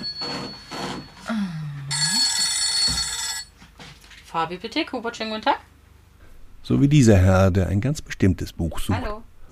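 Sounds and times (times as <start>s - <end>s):
telephone ringing with a buzzy electronic trill: 0.0s - 1.3s, 1.9s - 3.6s
speech: 4.4s - 5.7s, 6.7s - 9.3s.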